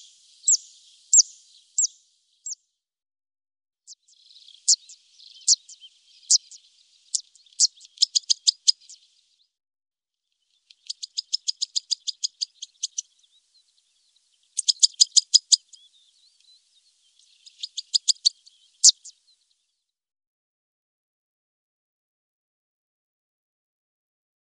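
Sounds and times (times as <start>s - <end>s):
Zitting cisticola clicking calls: 7.6s - 9.0s, 10.7s - 13.1s, 14.6s - 15.8s, 17.4s - 19.1s.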